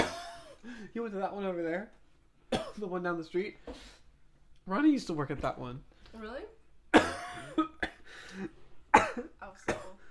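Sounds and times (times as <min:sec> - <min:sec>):
person coughing in harsh bursts: 0:00.0 - 0:00.6, 0:02.5 - 0:02.8, 0:06.9 - 0:08.1, 0:08.9 - 0:10.0
speech: 0:00.9 - 0:02.0, 0:02.8 - 0:04.0, 0:04.7 - 0:06.6, 0:08.4 - 0:08.6.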